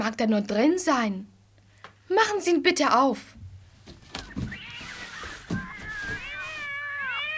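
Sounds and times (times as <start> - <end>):
speech: 0.2 - 1.3, 2.1 - 3.4
soft knocks and rustles: 3.4 - 6.8
kittens meowing let out of a large basket: 4.2 - 7.3.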